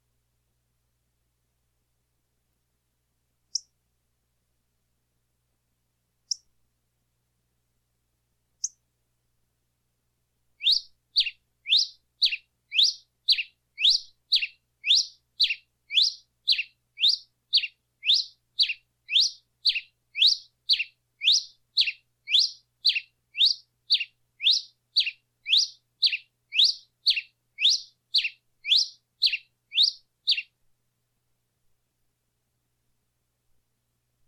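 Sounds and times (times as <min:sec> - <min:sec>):
singing: 0:10.6 - 0:30.5.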